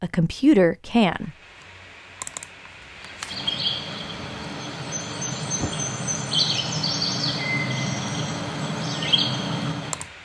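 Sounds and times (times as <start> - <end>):
speech: 0.0 - 1.4
steady outdoor hiss: 1.1 - 10.2
sharp clicks: 2.2 - 3.4, 9.9 - 10.1
red-eyed vireo, chestnut-sided warbler, eastern towhee, ovenbird and black-and-white warbler singing: 3.2 - 9.9.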